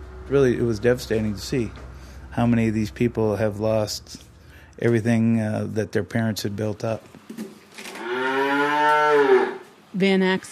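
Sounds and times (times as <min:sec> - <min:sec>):
speech: 0:00.3 - 0:07.4, 0:10.0 - 0:10.5
calves mooing at feeding time on a dairy farm: 0:07.9 - 0:09.7.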